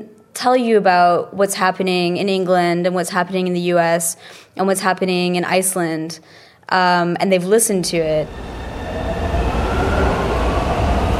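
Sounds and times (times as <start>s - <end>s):
speech: 0.4s - 8.6s
train rumbling on rails heard from inside a moving carriage: 7.8s - 11.1s.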